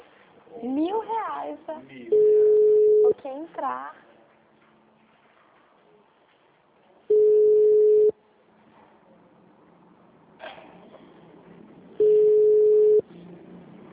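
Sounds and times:
speech: 0.7 - 2.6, 3.2 - 4.1
telephone ringback tone: 2.2 - 3.1, 7.1 - 8.1, 12.0 - 13.0.

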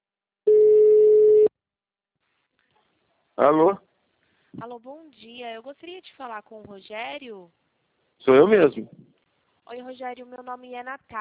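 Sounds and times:
telephone line tone while placing a call: 0.5 - 1.5
speech: 3.4 - 3.8, 4.5 - 7.6, 8.2 - 9.0, 9.7 - 11.2.

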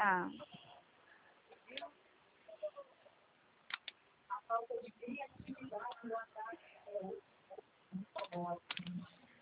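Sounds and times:
speech: 0.0 - 0.6, 4.5 - 7.3, 7.9 - 9.1
people talking quietly over a thin line: 0.0 - 9.4
computer mouse clicks: 3.7 - 4.0, 8.2 - 9.0
keyboard typing: 3.7 - 4.0, 8.1 - 9.1.

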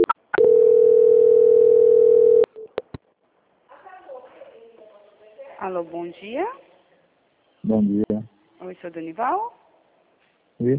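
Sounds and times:
telephone line tone while a call is transferred: 0.0 - 2.6
speech: 5.7 - 6.6, 7.6 - 9.6, 10.6 - 10.7.

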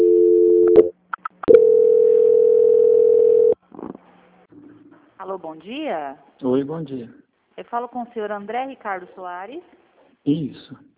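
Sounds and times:
telephone transfer tone on a bank call line: 0.0 - 3.6
speech: 5.3 - 10.8.

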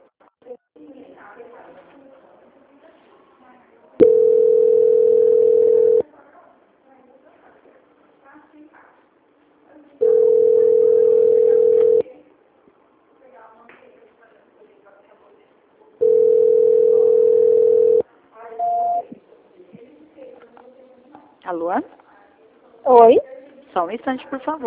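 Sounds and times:
long steady mid-pitched telephone tones during a call transfer: 4.0 - 6.0, 10.0 - 12.0, 16.0 - 18.0, 18.6 - 19.1
brief higher beep: 18.6 - 19.1
speech: 23.9 - 24.6.

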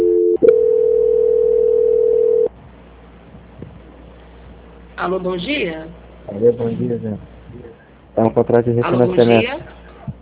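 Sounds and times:
telephone call-transfer tone on a financing call: 0.0 - 2.5
speech: 5.0 - 9.7.

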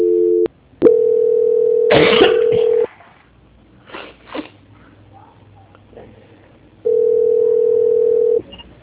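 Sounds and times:
telephone line tone during a call transfer: 0.0 - 2.9, 6.8 - 8.4.

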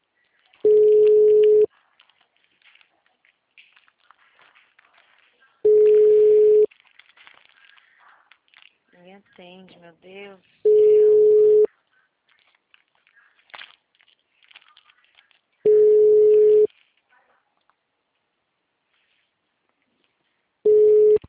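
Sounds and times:
faint clicks and rustles: 0.0 - 10.6, 11.4 - 21.2
telephone line tones as a call reconnects: 0.6 - 1.7, 5.6 - 6.7, 10.7 - 11.7, 15.7 - 16.7, 20.7 - 21.2
speech: 9.4 - 10.6.

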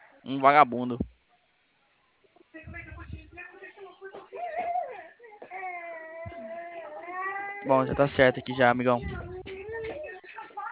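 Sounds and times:
speech: 0.2 - 1.1, 7.6 - 9.3
baby crying in wails: 4.4 - 8.0.

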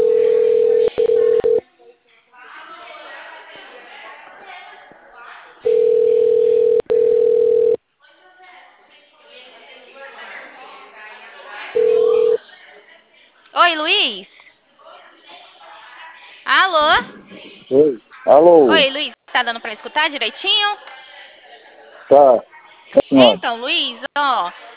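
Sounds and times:
phone line tone while calling back: 0.0 - 1.6, 5.7 - 7.8, 11.8 - 12.4
noise: 0.0 - 24.7
speech: 18.4 - 19.0, 19.7 - 20.9, 22.1 - 22.5.

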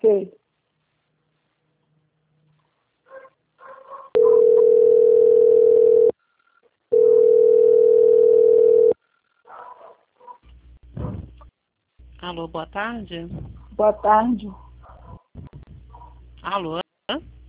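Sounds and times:
speech: 0.0 - 0.4, 12.2 - 14.6, 16.4 - 17.3
telephone line tone beeps while a call is being transferred: 4.2 - 6.1, 6.9 - 9.0.

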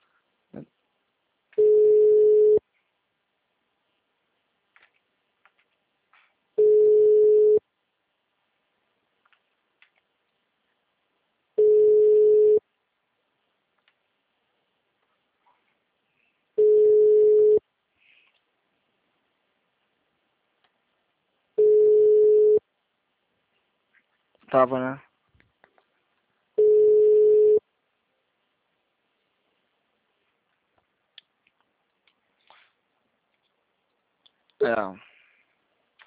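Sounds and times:
speech: 0.5 - 0.8, 24.5 - 25.1, 34.6 - 35.1
telephone ringing tone beeps while placing a call: 1.6 - 2.6, 6.6 - 7.6, 11.6 - 12.6, 16.6 - 17.6, 21.6 - 22.6, 26.6 - 27.6.

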